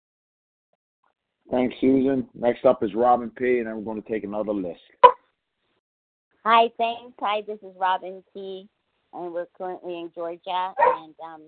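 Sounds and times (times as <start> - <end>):
speech: 1.5 - 5.1, 6.4 - 11.4
rescue dog from Costa Rica barking: 10.8 - 11.0.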